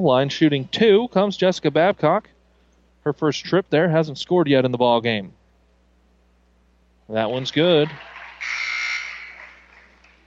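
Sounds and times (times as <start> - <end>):
speech: 0.0 - 2.4, 3.0 - 5.4, 7.1 - 8.6
electronic gym scoreboard buzzer blaring during a basketball game: 8.4 - 9.4.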